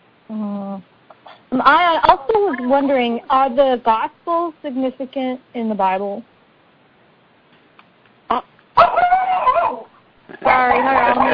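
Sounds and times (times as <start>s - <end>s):
speech: 1.5s - 6.3s, 8.3s - 8.5s
female dog barking and yelping: 8.3s - 11.3s.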